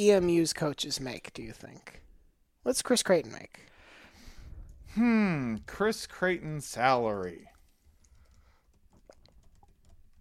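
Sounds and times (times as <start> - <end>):
speech: 0.0 - 2.0, 2.6 - 3.7, 4.9 - 7.5
fingers typing on a computer keyboard: 7.1 - 10.2.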